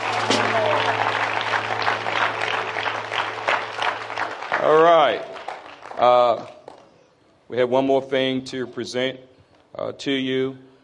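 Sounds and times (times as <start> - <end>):
audience applause: 0.0 - 6.9
speech: 7.5 - 10.7.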